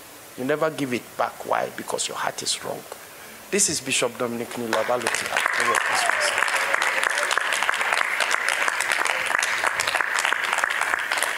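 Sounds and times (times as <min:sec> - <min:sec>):
speech: 0:00.4 - 0:06.5
crowd applauding in a room: 0:04.6 - 0:11.3
faint murmur of voices: 0:04.9 - 0:07.6.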